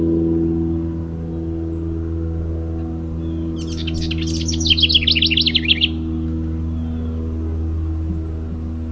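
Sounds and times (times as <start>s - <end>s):
steady low-pitched hum: 0.0s - 8.9s
house wren gurgling trilled song: 3.6s - 6.0s.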